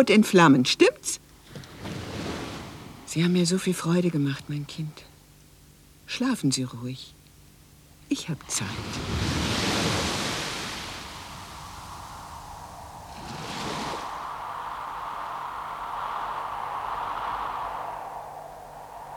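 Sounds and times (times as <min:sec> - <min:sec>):
speech: 0:00.0 - 0:01.2, 0:03.1 - 0:05.1, 0:06.1 - 0:07.2, 0:08.1 - 0:09.5
sea waves rushing: 0:08.6 - 0:19.1.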